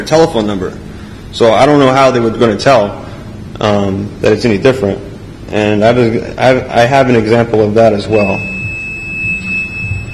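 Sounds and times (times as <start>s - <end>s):
speech: 0.0s - 3.0s, 3.6s - 8.5s
low murmuring rumble: 0.0s - 10.1s
telephone emitting a steady high-pitched electronic tone: 8.1s - 10.1s.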